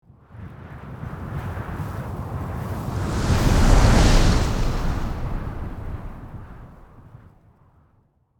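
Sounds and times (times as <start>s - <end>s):
strong desert wind blowing sand and dust: 2.3s - 7.1s.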